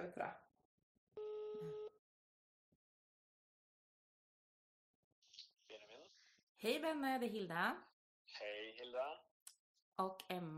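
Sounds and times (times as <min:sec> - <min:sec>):
speech: 0:00.0 - 0:00.5, 0:06.6 - 0:09.3, 0:10.0 - 0:10.5
electronic phone ringback tone: 0:01.2 - 0:02.0.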